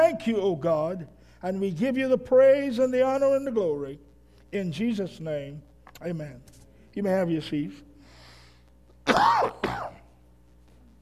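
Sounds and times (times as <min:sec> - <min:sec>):
speech: 0:00.1 - 0:07.9, 0:09.1 - 0:10.0
person clearing throat: 0:09.0 - 0:10.1.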